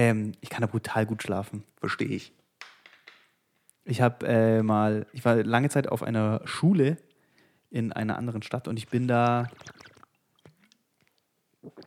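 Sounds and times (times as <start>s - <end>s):
speech: 0.0s - 2.4s, 3.9s - 7.1s, 7.7s - 9.9s
water bong bubbling: 8.1s - 11.0s, 11.6s - 11.8s.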